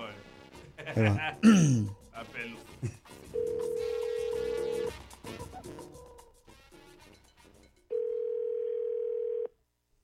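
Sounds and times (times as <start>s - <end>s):
laughter: 0.6s - 2.0s, 2.8s - 3.0s
speech: 0.9s - 3.0s
telephone dial tone after a call disconnects: 3.4s - 4.9s, 8.0s - 9.5s.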